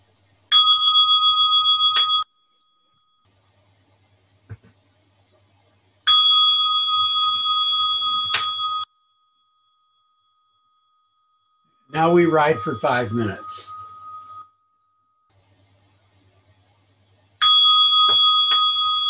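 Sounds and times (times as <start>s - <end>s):
bell ringing: 0.5s - 3.2s, 6.1s - 15.3s, 17.4s - 19.0s
speech: 12.0s - 13.7s.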